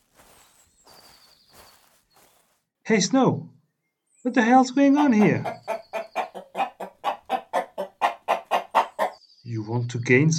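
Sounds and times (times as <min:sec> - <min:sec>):
speech: 0:02.9 - 0:03.6, 0:04.2 - 0:05.7, 0:09.5 - 0:10.3
hen clucking: 0:04.8 - 0:09.2.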